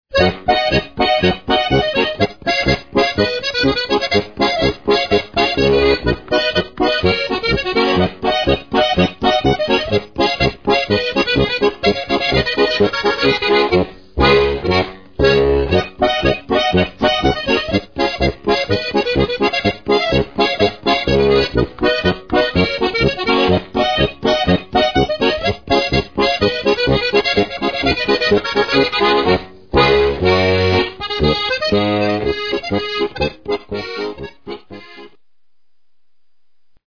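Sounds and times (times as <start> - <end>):
Styrian diatonic accordion: 0.1 - 35.2.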